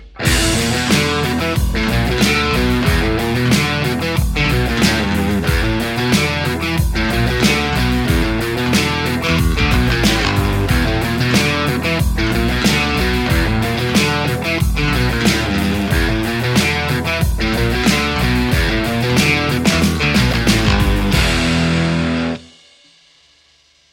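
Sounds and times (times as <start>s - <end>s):
Telecaster electric guitar through JCM800 amplifier: 0.2s - 22.5s.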